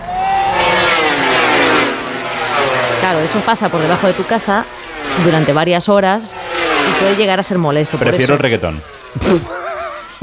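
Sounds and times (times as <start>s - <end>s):
motorcycle engines revving at a gathering of motorcyclists: 0.0s - 10.2s
speech: 3.2s - 9.6s
laughter: 7.9s - 10.2s.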